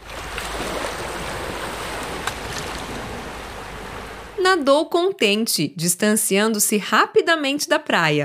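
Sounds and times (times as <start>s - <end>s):
faint splash: 0.0s - 4.4s
small waves washing onto a shore: 0.0s - 4.4s
speech: 4.5s - 8.2s.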